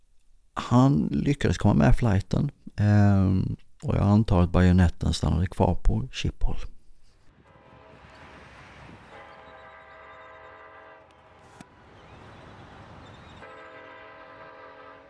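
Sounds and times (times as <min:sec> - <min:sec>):
speech: 0:00.7 - 0:06.7
rumbling rail noise: 0:07.3 - 0:15.0
train horn blaring: 0:07.3 - 0:15.0.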